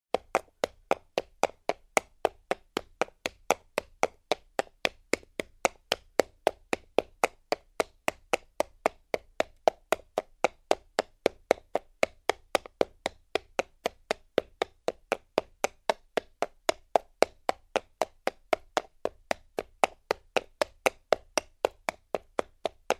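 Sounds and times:
horse walking on concrete: 0.1s - 22.9s.

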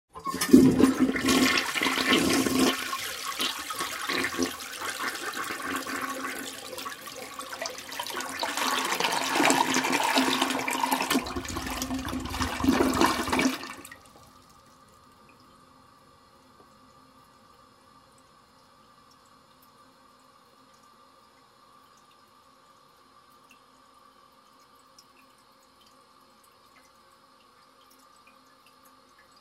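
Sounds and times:
toilet bowl flushing and filling: 0.1s - 14.7s.

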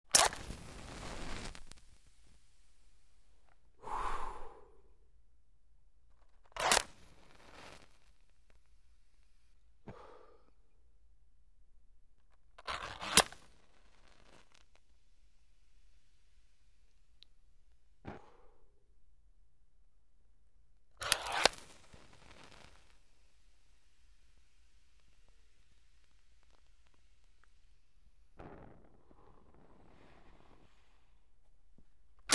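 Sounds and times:
match being lit: 0.1s - 2.4s, 6.3s - 9.3s, 12.6s - 14.9s, 21.0s - 31.4s
blowing out a match: 0.1s - 5.0s, 6.2s - 10.6s, 12.4s - 15.0s, 18.0s - 18.7s, 21.0s - 31.6s.

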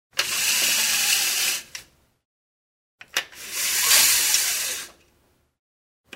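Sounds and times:
horizontal window blinds raising, lowering and scrolling: 0.2s - 1.9s, 3.4s - 5.0s.

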